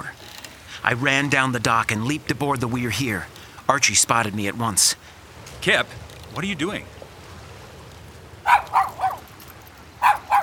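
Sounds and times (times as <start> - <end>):
speech: 0.8 - 7.0
dog barking: 8.4 - 9.3, 10.0 - 10.4.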